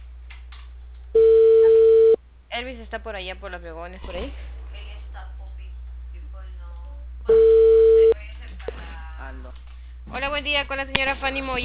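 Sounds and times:
low hum: 0:00.0 - 0:11.6
telephone ringback tone while placing a call: 0:01.2 - 0:02.2, 0:07.3 - 0:08.2
speech: 0:02.6 - 0:04.6, 0:09.3 - 0:11.6.

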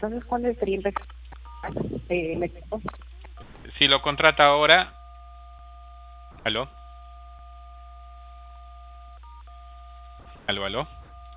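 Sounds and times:
speech: 0:00.0 - 0:03.1, 0:03.7 - 0:05.0, 0:06.4 - 0:06.8, 0:10.5 - 0:11.0
low telephone-line hum: 0:00.0 - 0:11.3
cellphone touchscreen keypad tones during a phone call: 0:00.9 - 0:02.0, 0:04.2 - 0:11.3.

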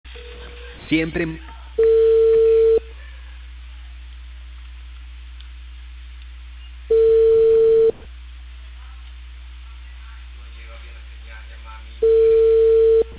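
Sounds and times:
speech: 0:00.9 - 0:01.9
telephone line tone beeps while a call is placed: 0:01.8 - 0:02.8, 0:06.9 - 0:08.0, 0:12.0 - 0:13.1.

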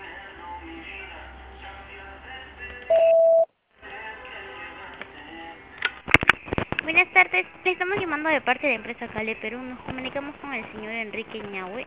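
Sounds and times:
voicemail beep tone: 0:02.9 - 0:03.5
speech: 0:07.2 - 0:11.8.

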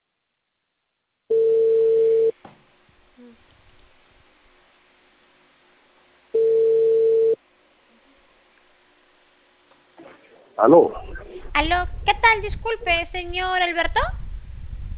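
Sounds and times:
faint low noise: 0:00.0 - 0:14.9
telephone line tone while a call is being placed: 0:01.3 - 0:02.4, 0:06.4 - 0:07.4
speech: 0:10.6 - 0:14.2.

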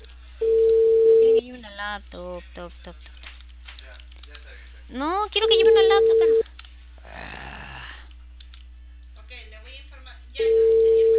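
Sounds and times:
telephone ringback tone on an unanswered call: 0:00.4 - 0:01.4, 0:05.8 - 0:06.4, 0:10.4 - 0:11.1
speech: 0:02.0 - 0:03.2, 0:04.9 - 0:06.5.

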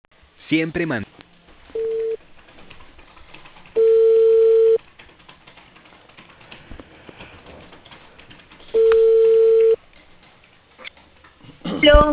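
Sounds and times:
speech: 0:00.5 - 0:01.2
telephone line beeps after a dropped call: 0:01.8 - 0:02.2, 0:03.8 - 0:04.8, 0:08.8 - 0:09.8.

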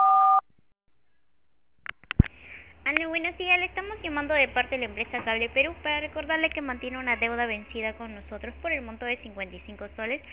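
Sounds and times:
voicemail beep tone: 0:00.0 - 0:00.4
speech: 0:03.3 - 0:10.3.

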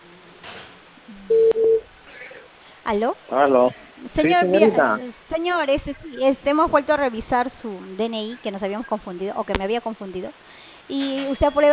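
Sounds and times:
faint low hum: 0:00.0 - 0:11.7
short mid-pitched telephone beeps as a call is placed: 0:01.3 - 0:01.8
speech: 0:02.9 - 0:11.7.

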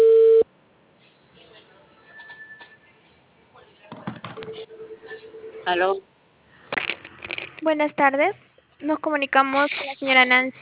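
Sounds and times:
telephone ringback tone: 0:04.4 - 0:05.7
speech: 0:05.7 - 0:06.1, 0:07.6 - 0:10.5.

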